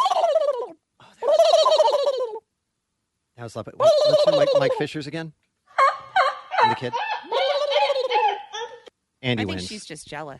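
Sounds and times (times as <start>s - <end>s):
person imitating a turkey gobble: 0.0s - 2.4s, 3.8s - 4.9s, 5.8s - 8.8s
speech: 3.4s - 5.4s, 6.6s - 7.0s, 9.2s - 10.3s.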